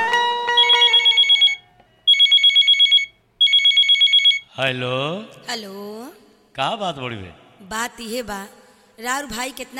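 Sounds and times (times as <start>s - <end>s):
telephone ringing with rapid trilling electronic tones: 0.6s - 4.5s
speech: 4.6s - 9.7s.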